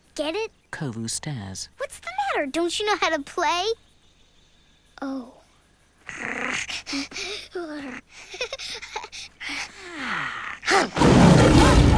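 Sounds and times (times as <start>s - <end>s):
speech: 0.2s - 3.8s, 5.0s - 5.4s, 6.1s - 11.4s
growling, snarling vocal sounds: 10.2s - 11.9s
loud angry lion roar, harsh and rumbling: 10.8s - 11.9s.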